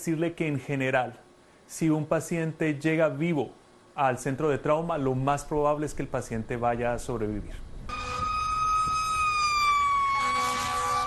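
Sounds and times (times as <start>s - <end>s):
speech: 0.0s - 7.6s
low rumble of traffic: 2.2s - 11.0s
ambulance siren: 7.9s - 11.0s.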